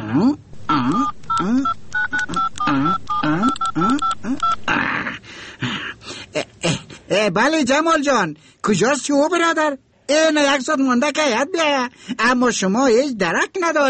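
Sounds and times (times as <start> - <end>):
speech: 0.1 - 1.8, 7.2 - 13.8
touch-tone keypad dialing on a telephone to place a call: 0.7 - 4.7.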